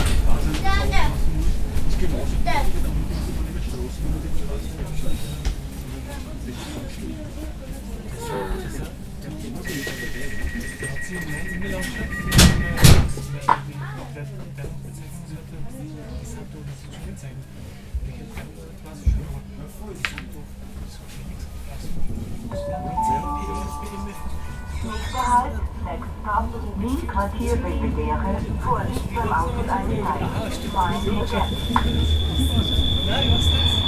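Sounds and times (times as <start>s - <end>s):
passengers and children chattering on a train: 0.0s - 33.8s
train rumbling through Vienna: 0.0s - 33.8s
brief tones on a train: 9.6s - 13.7s, 22.5s - 33.8s.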